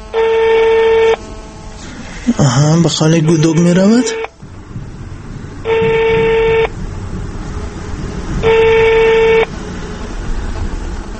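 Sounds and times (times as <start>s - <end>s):
electronic telephone tone as a phone number is dialed: 0.0s - 1.3s, 2.4s - 4.4s, 5.7s - 6.7s, 8.4s - 9.5s
speech: 2.4s - 4.3s.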